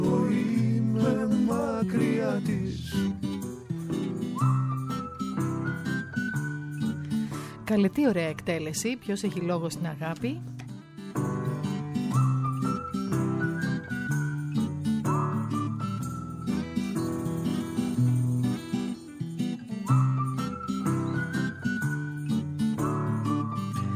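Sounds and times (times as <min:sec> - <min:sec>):
person whistling a melody: 0:00.0 - 0:07.7, 0:11.6 - 0:18.0, 0:19.7 - 0:23.9
full instrumental accompaniment: 0:00.0 - 0:23.9
speech: 0:07.7 - 0:10.6.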